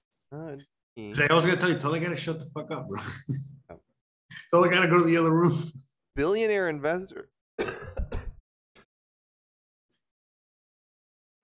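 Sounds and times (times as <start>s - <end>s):
speech: 0.6s - 3.6s, 4.5s - 7.3s
person clearing throat: 7.6s - 8.4s
person coughing: 7.6s - 8.4s.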